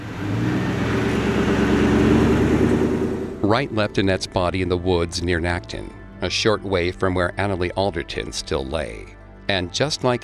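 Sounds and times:
broad rumble of road noise: 0:00.0 - 0:04.4
car engine humming while driving: 0:00.0 - 0:04.4
speech: 0:03.5 - 0:10.2.

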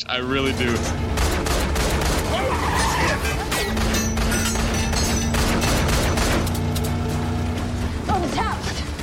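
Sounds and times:
speech: 0:00.0 - 0:01.1
car engine roaring during a chase: 0:00.0 - 0:09.0
car tires screeching: 0:00.3 - 0:09.0
rapid bursts of gunfire during a car chase: 0:00.8 - 0:02.6, 0:03.3 - 0:06.6.

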